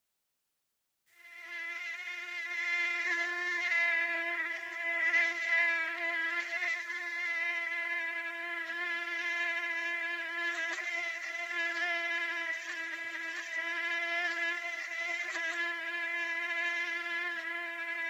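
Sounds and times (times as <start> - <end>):
mosquito whine: 1.2 - 18.0.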